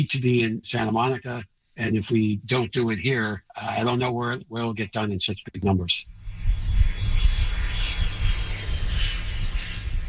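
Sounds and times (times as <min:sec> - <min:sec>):
speech: 0:00.0 - 0:06.1
airplane engine roar during takeoff: 0:06.1 - 0:10.0.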